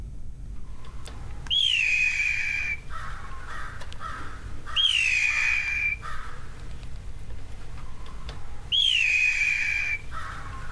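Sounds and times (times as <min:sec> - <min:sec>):
Blue Jay mimicking a hawk scream: 0:01.5 - 0:06.5, 0:08.6 - 0:10.7.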